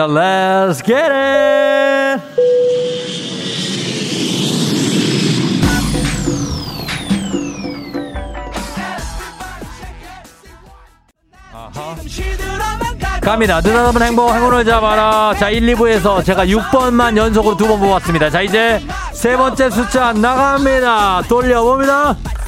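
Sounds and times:
speech: 0.0s - 2.5s, 13.2s - 22.4s
upbeat musical jingle: 1.3s - 4.6s, 5.6s - 10.2s
loud jet airplane roaring with rising whine taking off: 1.4s - 9.4s
swooshing sweeps: 2.2s - 9.7s.

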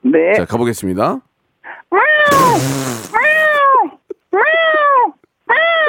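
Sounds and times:
speech: 0.1s - 1.3s, 2.3s - 3.1s
person imitating a mother cat calling for her lost kittens: 2.0s - 5.8s
short noisy burst: 2.3s - 3.5s.

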